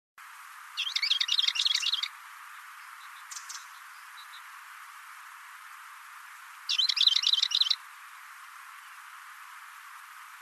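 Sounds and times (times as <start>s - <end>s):
bird giving high trilled chirps: 0.8s - 2.1s, 2.8s - 4.5s, 6.7s - 7.8s.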